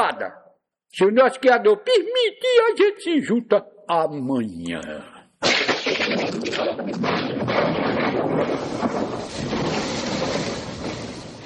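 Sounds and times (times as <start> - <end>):
speech: 0.1 - 10.3
sharper thunder crackles: 5.6 - 11.4
deep rumbling rolling thunder: 6.2 - 11.4
heavy rain: 8.6 - 11.4.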